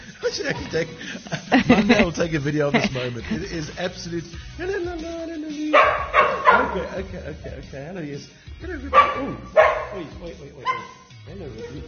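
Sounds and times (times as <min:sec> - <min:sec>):
laughter: 0:00.0 - 0:10.8
speech: 0:00.3 - 0:11.8
dog barking: 0:05.8 - 0:07.0, 0:08.9 - 0:11.8.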